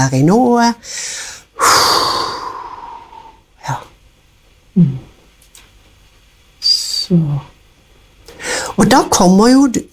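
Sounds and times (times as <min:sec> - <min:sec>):
speech: 0:00.0 - 0:01.1, 0:04.8 - 0:05.1, 0:07.1 - 0:07.5, 0:08.8 - 0:09.9
slow breathing in and out during a mindfulness moment: 0:00.8 - 0:03.5, 0:08.3 - 0:08.8.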